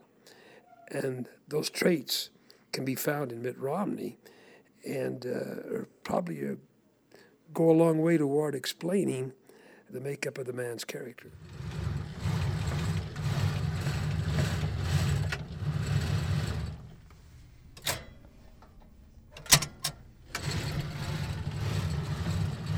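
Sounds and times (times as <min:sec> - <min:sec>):
speech: 0:00.9 - 0:06.7, 0:07.5 - 0:11.6
microfilm reels spinning on a reader: 0:11.3 - 0:22.7.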